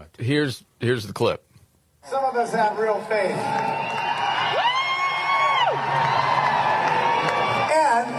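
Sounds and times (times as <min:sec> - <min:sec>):
speech: 0:00.1 - 0:04.1
concert crowd roaring: 0:03.2 - 0:08.1.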